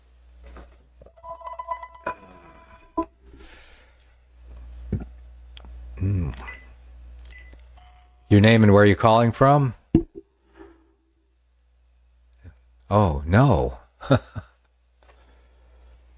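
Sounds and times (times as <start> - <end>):
low steady hum: 0.0 - 16.1
telephone ringing with a bright electronic tone: 1.1 - 3.0
speech: 8.3 - 9.8, 12.9 - 14.4.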